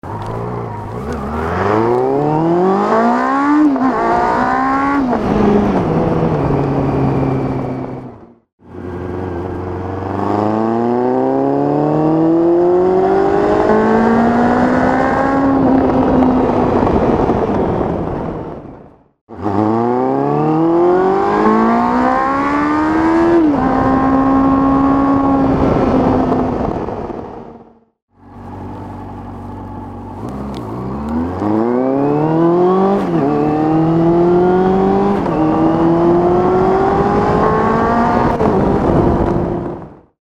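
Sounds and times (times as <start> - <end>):
Honda CB400SF motorcycle accelerating: 0.0 - 40.2.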